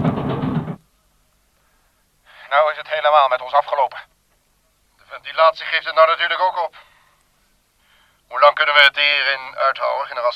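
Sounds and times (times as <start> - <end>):
engine sputtering and cutting out from blocked air intake: 0.0 - 0.8
speech: 2.8 - 4.1, 5.1 - 6.9, 8.3 - 10.3.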